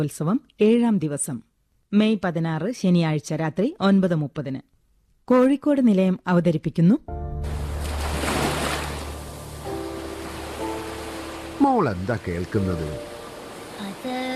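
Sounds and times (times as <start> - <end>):
speech: 0.0 - 4.7, 5.3 - 7.6, 11.6 - 13.1, 13.8 - 14.3
sea waves surging and hissing: 7.4 - 14.3
wind: 7.4 - 14.3.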